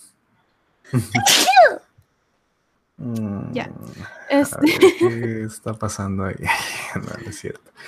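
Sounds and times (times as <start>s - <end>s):
speech: 0.9s - 1.9s, 3.0s - 7.8s
laughter: 1.0s - 1.2s, 3.2s - 7.8s
single forceful sneeze: 1.0s - 1.8s.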